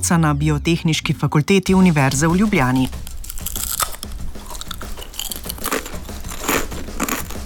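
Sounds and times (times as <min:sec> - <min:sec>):
speech: 0:00.0 - 0:03.0
biting and chewing crispy potato chips: 0:02.7 - 0:07.4.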